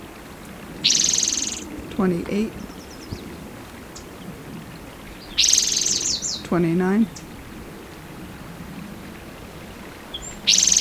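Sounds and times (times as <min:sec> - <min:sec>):
song sparrow singing a buzzy trill: 0:00.8 - 0:07.6, 0:09.6 - 0:10.7
speech: 0:02.0 - 0:02.6, 0:06.5 - 0:07.2.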